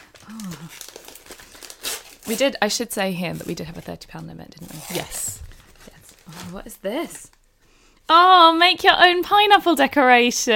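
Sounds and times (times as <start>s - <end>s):
red stripy wrapping paper crinkling as a present is unwrapped: 0.0s - 7.4s
speech: 0.3s - 0.9s, 2.3s - 5.4s, 6.3s - 7.4s, 8.1s - 10.5s.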